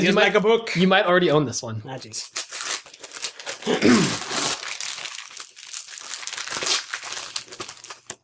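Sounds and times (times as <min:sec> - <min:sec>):
speech: 0:00.0 - 0:02.6, 0:03.6 - 0:04.4
thin wrapping paper crinkling and tearing as a present is unwrapped: 0:02.2 - 0:08.2.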